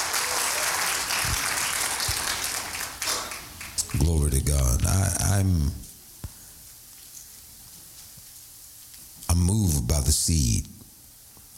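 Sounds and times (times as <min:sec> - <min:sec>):
crowd clapping in sustained applause: 0:00.0 - 0:04.2
speech: 0:04.0 - 0:05.9, 0:09.8 - 0:10.8.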